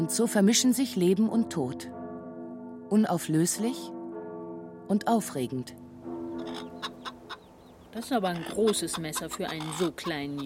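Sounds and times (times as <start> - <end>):
speech: 0.0 - 2.0, 2.9 - 4.0, 4.9 - 5.8, 7.9 - 10.4
rooster clucking fluttering out of a henhouse: 8.2 - 10.4.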